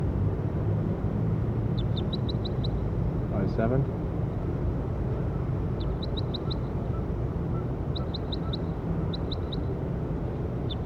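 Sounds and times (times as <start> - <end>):
low rumble of traffic or engine noise: 0.0 - 10.8
bird chirping: 1.8 - 2.8, 5.8 - 9.7, 10.6 - 10.8
speech: 3.6 - 4.0.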